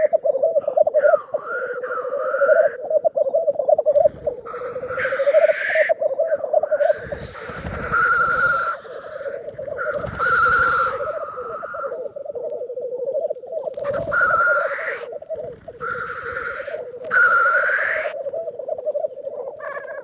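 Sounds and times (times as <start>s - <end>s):
black grouse rookooing: 0.0s - 20.0s.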